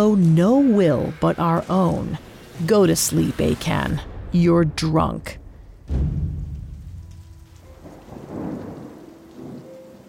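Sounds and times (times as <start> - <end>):
steady rain: 0.0 - 4.5, 5.4 - 10.0
speech: 0.0 - 6.3
deep rumble of thunder: 4.0 - 10.0.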